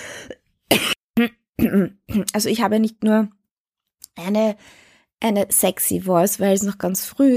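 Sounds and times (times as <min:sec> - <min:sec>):
person coughing: 0:00.7 - 0:02.2
person clearing throat: 0:00.7 - 0:02.3
speech: 0:00.7 - 0:03.4, 0:04.2 - 0:07.3.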